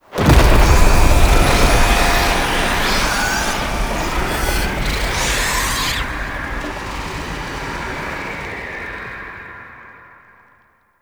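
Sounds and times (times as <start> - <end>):
alarm stinger: 0.2 - 6.2.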